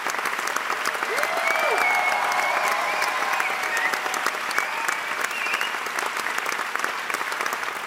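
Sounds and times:
theatre audience applause for a stage production: 0:00.0 - 0:07.8
faint whoops or voices: 0:01.0 - 0:05.8.

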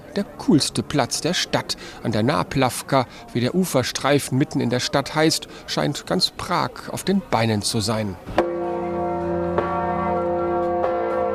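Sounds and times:
speech: 0:00.2 - 0:08.5
large heavy bell ringing: 0:08.4 - 0:11.3.

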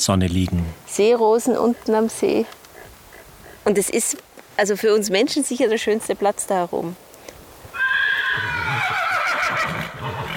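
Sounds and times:
speech: 0:00.0 - 0:02.6, 0:03.7 - 0:07.1
horse neighing: 0:01.5 - 0:04.2, 0:07.7 - 0:10.3.

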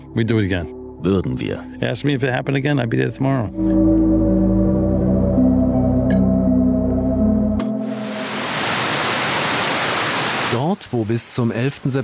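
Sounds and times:
low steady hum and tonal drone: 0:00.0 - 0:08.5
speech: 0:00.2 - 0:04.6, 0:10.9 - 0:12.0
water cascading into memorial pools: 0:07.8 - 0:12.0.

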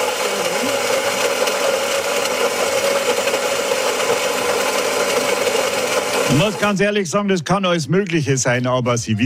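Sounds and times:
coffee grinder inside a coffee machine whirring: 0:00.0 - 0:07.1
speech: 0:06.3 - 0:09.2.

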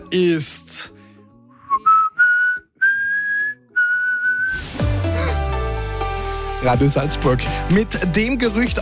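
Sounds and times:
speech: 0:00.1 - 0:01.0, 0:06.6 - 0:08.8
person whistling a tune: 0:01.6 - 0:04.6
burst of music: 0:04.4 - 0:08.6.

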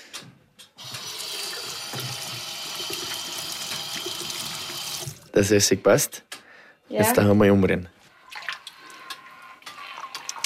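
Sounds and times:
washing hands under running water during cooking: 0:00.8 - 0:05.3
speech: 0:05.4 - 0:06.3, 0:06.9 - 0:08.0.

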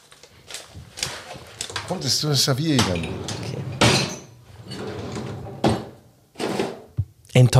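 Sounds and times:
drawers with rubbish bags, champagne glass, carafe and Christmas box sliding open: 0:01.0 - 0:06.9
speech: 0:01.9 - 0:03.4, 0:07.4 - 0:07.5.

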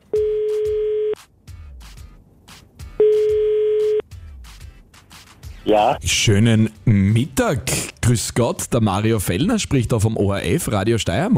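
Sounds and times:
telephone line tone as a call is placed: 0:00.1 - 0:01.2, 0:03.0 - 0:04.0
speech: 0:05.7 - 0:11.3.

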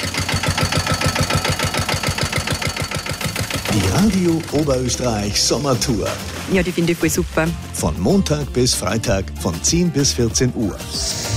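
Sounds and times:
car engine running while driving around a small roundabout: 0:00.0 - 0:07.6
speech: 0:03.8 - 0:11.3.

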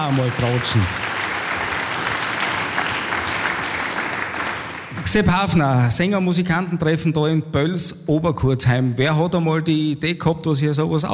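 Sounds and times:
speech: 0:00.0 - 0:01.1, 0:05.0 - 0:11.1
sizeable audience applauding: 0:00.0 - 0:05.2.

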